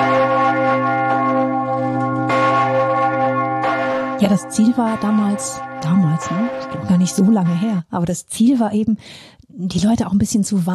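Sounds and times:
city alarm bell in Lausanne ringing an emergency pattern: 0.0 - 8.0
speech: 4.2 - 10.7.

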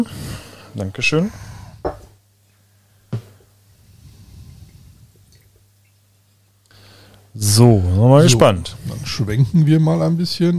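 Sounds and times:
speech: 0.8 - 2.0, 7.5 - 10.5
glassy knocks: 1.8 - 2.1.

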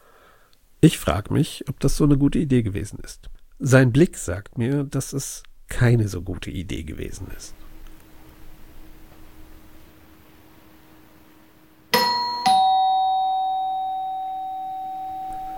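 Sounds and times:
speech: 0.8 - 7.6
two-tone ding-dong doorbell chime: 11.9 - 15.5.

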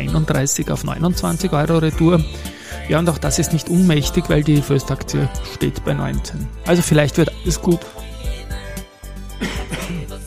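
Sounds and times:
speech: 0.1 - 8.0
raspy coughs: 9.3 - 10.2.

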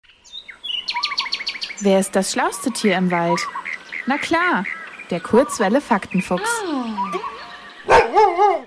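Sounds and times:
speech: 1.8 - 7.3
dog yelping howl: 7.3 - 8.6
dog barking: 7.8 - 8.6.

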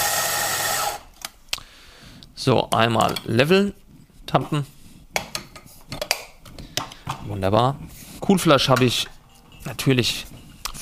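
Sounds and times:
electric coffee grinder grinding beans for espresso: 0.0 - 1.1
speech: 2.4 - 4.8, 7.3 - 10.4.

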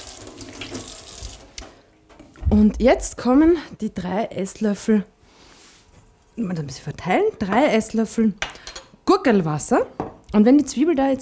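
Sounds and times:
water running from a kitchen tap: 0.0 - 1.6
speech: 2.5 - 5.1, 6.4 - 11.1.

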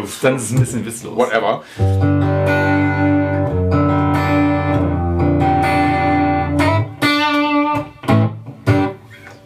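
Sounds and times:
speech: 0.0 - 2.6
distorted electric guitar through amp profile with reverb, no pedal: 1.8 - 9.4.

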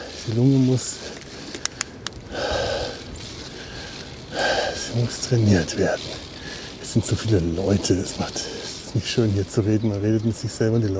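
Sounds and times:
speech: 0.2 - 1.3, 4.9 - 6.2, 6.9 - 10.9
heavy gasping breath: 1.0 - 5.2, 6.0 - 6.8, 8.3 - 8.9
faint sharp clicks: 1.1 - 2.3.

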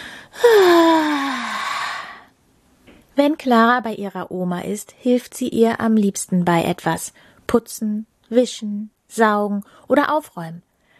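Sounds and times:
person yawning: 0.4 - 2.2
speech: 3.2 - 10.7.

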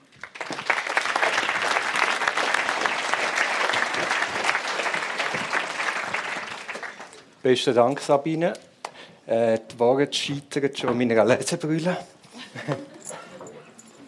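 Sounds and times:
audience applause: 0.0 - 7.3
speech: 7.4 - 8.7, 9.3 - 12.9
laughter: 12.3 - 13.8.

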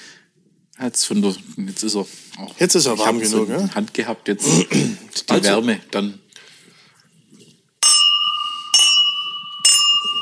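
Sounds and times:
speech: 0.8 - 6.2
whisky glasses clinking together in a toast: 7.8 - 10.1.

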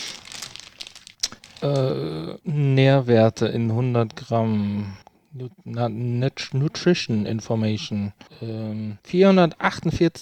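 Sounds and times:
paper wrapping of a large praline crinkling: 0.0 - 1.8
speech: 1.6 - 10.2.

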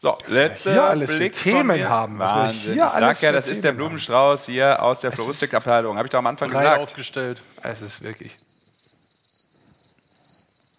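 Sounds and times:
speech: 0.0 - 8.5
crickets chirping sound effect: 7.7 - 10.7.

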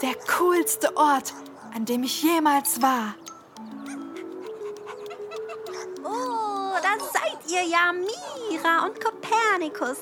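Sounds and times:
dog panting: 0.0 - 1.9, 3.8 - 8.7
speech: 0.0 - 3.2, 7.5 - 10.0.

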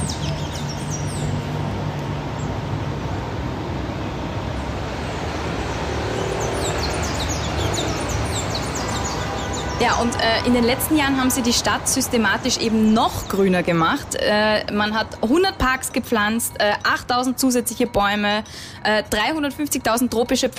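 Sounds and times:
birds chirping and calling in a city: 0.0 - 2.6, 4.6 - 19.2
steady low rumble of city traffic: 0.0 - 20.5
speech: 9.8 - 20.5.

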